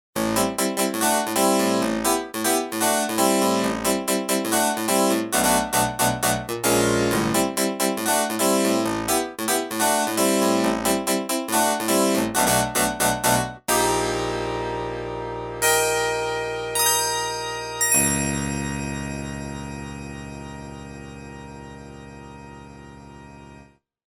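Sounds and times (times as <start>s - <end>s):
Roland MKS-10 harpsichord patch with chorus: 0.2s - 23.6s.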